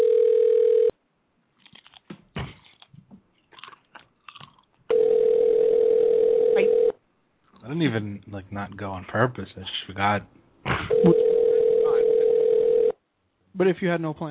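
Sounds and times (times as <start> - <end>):
telephone tone signalling an unreachable number over a phone line: 0.0 - 0.9, 4.9 - 7.0, 10.9 - 13.0
crunching and chewing of chips: 1.5 - 4.9
speech: 7.8 - 10.4, 11.0 - 11.3, 13.6 - 14.2.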